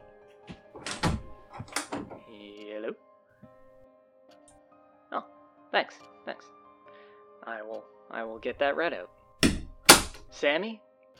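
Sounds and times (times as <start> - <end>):
door being opened: 0.5 - 2.3
door handle rattling: 0.5 - 2.3, 9.4 - 10.3
speech: 5.2 - 6.1, 8.4 - 9.1, 10.4 - 11.1.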